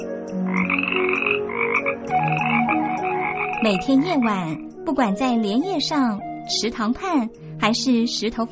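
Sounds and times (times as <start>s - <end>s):
chorus of frogs croaking at a pond: 0.0s - 5.0s
speech: 3.6s - 8.5s.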